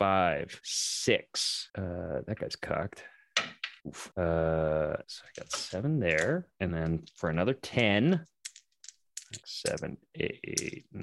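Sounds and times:
speech: 0.0s - 8.3s, 9.3s - 11.0s
dice clattering across a hard surface: 5.4s - 9.9s.

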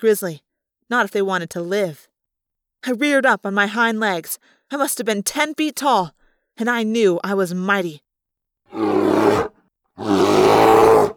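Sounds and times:
speech: 0.0s - 2.1s, 2.8s - 8.0s, 8.7s - 10.2s
grizzly bear roaring: 8.7s - 11.1s.

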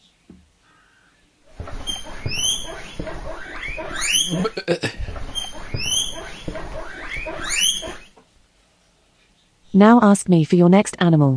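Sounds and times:
chattering: 1.6s - 8.1s
guinea pig squeaking and wheeking: 1.6s - 8.1s
speech: 4.3s - 5.0s, 9.8s - 11.3s.

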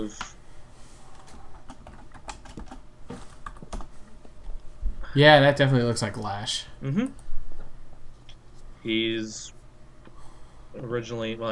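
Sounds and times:
speech: 0.0s - 0.3s, 5.2s - 7.2s, 8.8s - 9.6s, 10.8s - 11.5s
typing on a computer keyboard: 1.2s - 2.8s.

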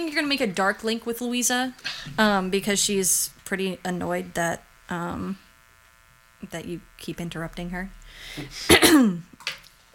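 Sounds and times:
speech: 0.0s - 5.4s, 6.4s - 9.4s
woman clearing her throat: 8.7s - 9.3s.

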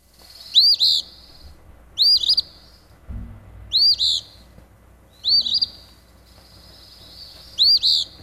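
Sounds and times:
Eastern Phoebe singing its raspy two-part phrase: 0.3s - 2.9s, 3.7s - 4.5s, 5.1s - 8.2s
faint low rumble: 1.1s - 8.2s.

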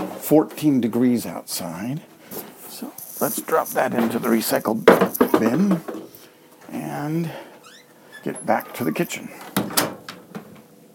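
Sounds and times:
speech: 0.3s - 2.1s, 2.8s - 6.0s, 6.7s - 7.4s, 8.2s - 9.7s
kitchen door to a pantry sunroom shutting with a sharp bang: 9.4s - 10.5s.

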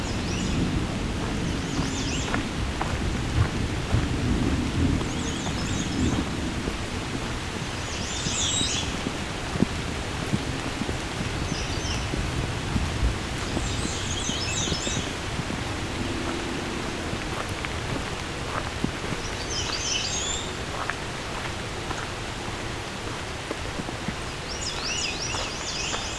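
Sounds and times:
American redstart singing: 0.0s - 2.5s, 5.0s - 6.2s, 7.8s - 9.0s, 13.4s - 17.5s, 18.5s - 20.6s
low continuous thunder rumbling: 0.0s - 7.9s, 8.8s - 19.5s
rain: 0.0s - 26.1s.

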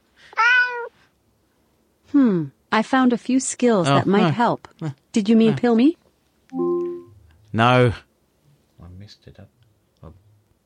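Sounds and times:
cat meow played by smart speaker: 0.3s - 1.0s
speech: 2.2s - 6.7s, 7.6s - 8.1s.

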